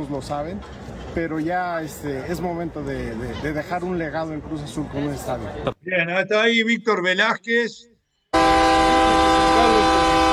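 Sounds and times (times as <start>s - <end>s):
speech: 0.0s - 9.0s
train horn sounding: 8.3s - 10.3s.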